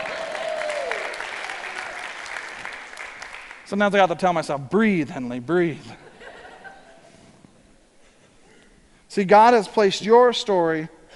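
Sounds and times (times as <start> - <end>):
crowd applauding: 0.0 - 3.7
speech: 3.7 - 6.0, 9.2 - 11.1
laughter: 5.9 - 7.4.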